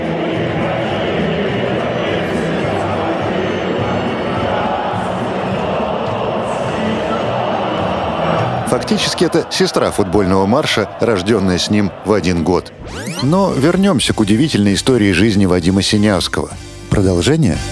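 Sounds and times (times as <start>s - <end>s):
huge stadium crowd singing together: 0.0s - 13.8s
speech: 8.8s - 17.6s.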